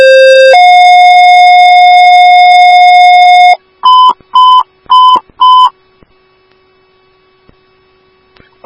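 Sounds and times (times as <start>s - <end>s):
electronic emergency dispatch alert tones for a fire station and ambulance: 0.0s - 5.8s.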